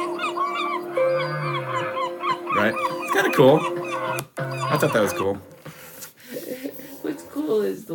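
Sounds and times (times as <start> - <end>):
whale calls played from a sound app: 0.0 - 5.3
speech: 2.6 - 3.8, 4.7 - 5.6, 7.5 - 7.9.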